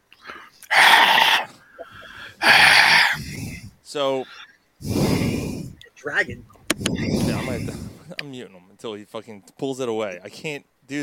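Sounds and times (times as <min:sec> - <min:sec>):
rough wheezy breaths blown into a microphone: 0:00.2 - 0:05.8, 0:06.8 - 0:08.2
speech: 0:03.9 - 0:04.4, 0:06.0 - 0:11.0.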